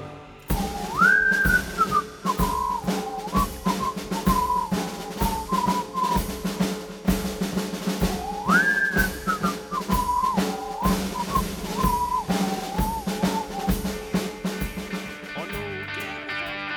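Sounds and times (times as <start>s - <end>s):
whistled melody in a song: 0.4s - 6.7s, 8.0s - 15.0s
steady drum beat: 0.5s - 16.6s.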